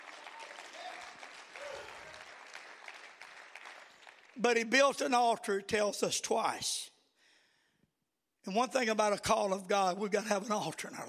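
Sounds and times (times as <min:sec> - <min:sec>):
audience clapping hands in worship: 0:00.0 - 0:05.0
speech: 0:04.4 - 0:06.9, 0:08.4 - 0:11.0.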